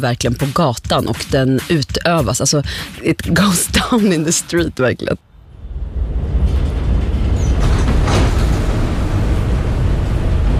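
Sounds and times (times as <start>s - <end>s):
speech: 0.0s - 5.3s
subway train roaring: 5.2s - 10.5s
high metallic squeal of subway train: 5.6s - 9.6s.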